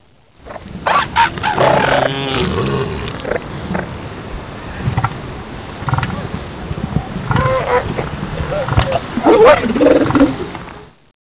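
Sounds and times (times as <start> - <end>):
seal harem: 0.4 - 4.0, 5.8 - 10.9.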